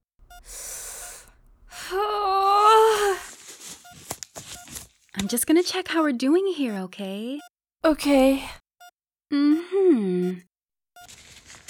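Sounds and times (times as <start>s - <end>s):
person breathing deeply during labour: 0.4s - 2.0s
person moaning during labour: 1.8s - 3.3s
speech: 5.3s - 8.6s, 9.3s - 10.5s.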